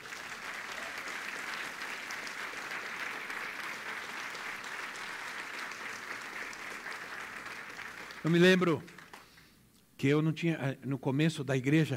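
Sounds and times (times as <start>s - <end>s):
large crowd applauding: 0.0s - 9.4s
speech: 8.2s - 9.0s, 10.0s - 11.9s.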